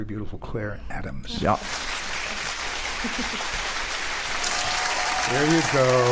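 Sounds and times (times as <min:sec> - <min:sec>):
speech: 0:00.0 - 0:01.9, 0:03.0 - 0:03.8, 0:05.3 - 0:06.0
audience applause welcoming a guest stage actress: 0:01.4 - 0:06.0.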